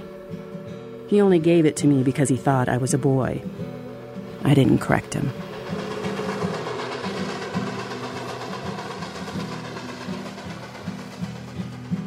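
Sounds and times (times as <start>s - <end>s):
speech: 1.1s - 3.8s, 4.4s - 5.5s
train rumbling along rails: 2.2s - 12.0s
faint rhythmic clacking: 3.4s - 12.0s
sharp knocks: 5.1s - 11.9s.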